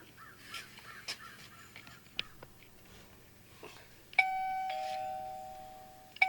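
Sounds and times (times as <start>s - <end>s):
faint bird calls: 0.0s - 2.5s
loud electronic doorbell chime: 4.1s - 6.2s.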